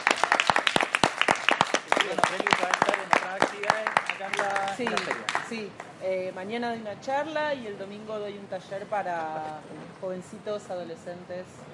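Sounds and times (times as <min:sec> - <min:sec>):
audience applause: 0:00.0 - 0:05.6
speech: 0:04.8 - 0:11.7.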